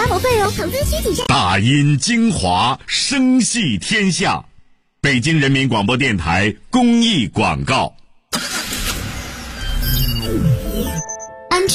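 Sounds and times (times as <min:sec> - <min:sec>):
speech: 0:00.2 - 0:08.5, 0:11.6 - 0:11.7
car engine while driving: 0:08.3 - 0:10.7
road noise from a driving car: 0:08.4 - 0:09.8.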